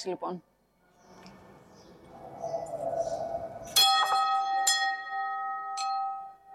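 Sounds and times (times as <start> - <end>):
large bell in an exhibition struck: 2.1 - 5.9.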